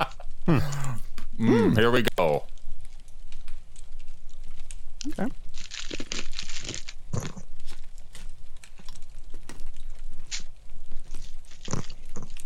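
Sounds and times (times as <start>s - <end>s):
speech: 0.0s - 0.8s, 1.4s - 2.5s, 5.2s - 5.4s
crinkling: 2.4s - 12.4s
crunching of a hard holiday candy: 3.5s - 12.4s.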